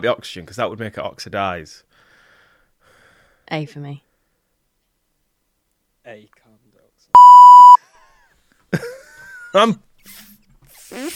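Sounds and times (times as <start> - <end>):
speech: 0.0 - 2.0, 3.5 - 4.1, 6.0 - 6.5, 9.5 - 10.2
censor beep over swearing: 7.2 - 7.8.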